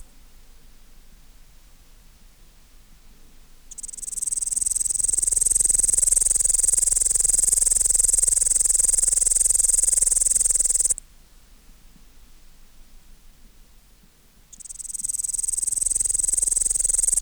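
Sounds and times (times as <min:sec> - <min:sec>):
upland green bush-cricket Tettigonia cantans buzzing song: 0:03.7 - 0:11.0, 0:14.5 - 0:17.2.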